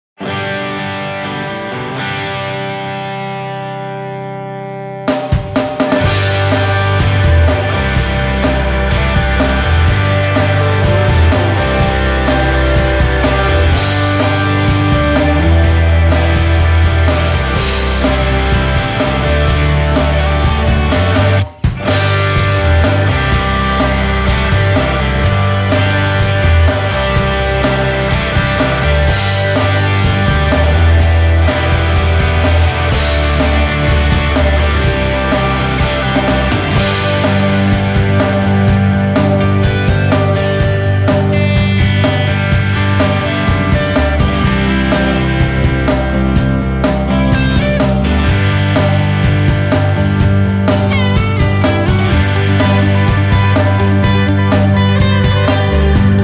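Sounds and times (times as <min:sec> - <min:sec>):
country music: 0:00.2 - 0:56.2.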